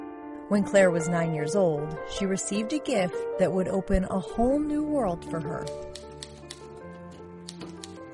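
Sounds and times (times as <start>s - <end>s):
speech: 0.5s - 6.1s
antique typewriter keys clacking: 5.2s - 8.1s.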